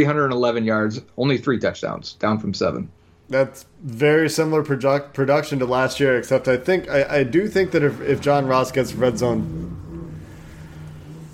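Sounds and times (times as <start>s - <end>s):
speech: 0.0s - 9.8s
motorcycle engine idling and revving outside: 6.6s - 11.3s.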